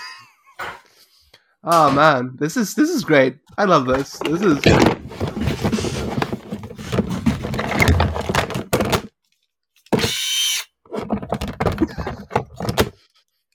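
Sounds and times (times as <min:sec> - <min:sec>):
speech: 0:01.6 - 0:05.0
tools and parts rattling and clattering: 0:03.9 - 0:09.1, 0:11.0 - 0:13.0
power drill whirring: 0:09.8 - 0:10.7.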